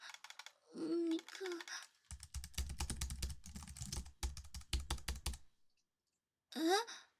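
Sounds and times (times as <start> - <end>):
rapid typing on a computer keyboard: 0.0 - 5.5.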